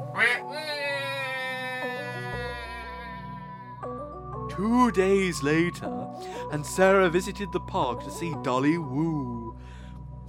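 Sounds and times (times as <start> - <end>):
duck quacking: 0.0 - 1.1
speech: 4.6 - 9.8.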